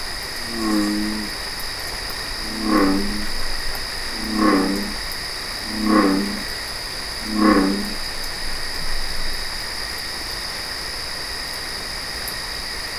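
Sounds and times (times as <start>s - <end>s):
bullfrog calling: 0.4s - 1.4s, 2.3s - 3.5s, 4.1s - 6.6s, 7.2s - 8.1s.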